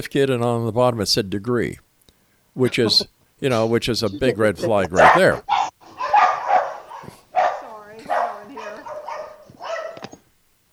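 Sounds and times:
speech: 0.0 - 1.9, 2.6 - 5.6
dog barking and yipping in a scuffle with another dog: 5.0 - 10.3.

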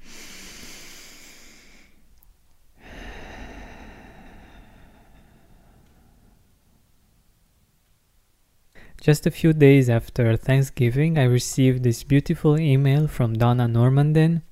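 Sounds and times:
deep breath in through the nose, out through the mouth: 0.0 - 2.1, 2.8 - 6.9, 8.7 - 9.0
speech: 9.0 - 14.5.

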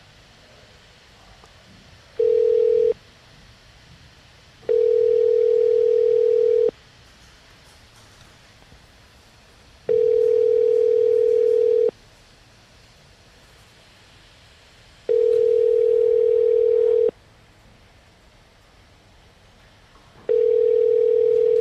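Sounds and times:
quiet telephone line hiss: 0.0 - 21.5
telephone line beep from placing a call: 2.2 - 3.0, 4.7 - 6.7, 9.9 - 11.9, 15.1 - 17.1, 20.3 - 21.5.

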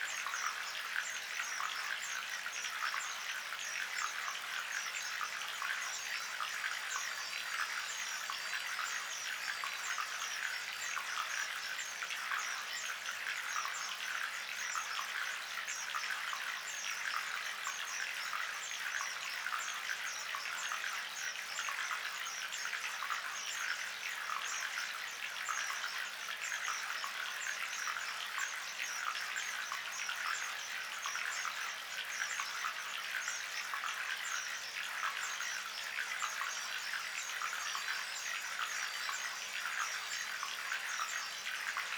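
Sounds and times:
gentle running water: 0.0 - 41.9.

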